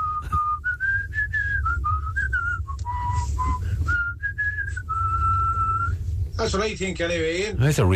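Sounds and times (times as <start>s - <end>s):
man whistling an old theme tune: 0.0s - 6.0s
low rumble: 0.0s - 7.9s
speech: 6.4s - 7.9s.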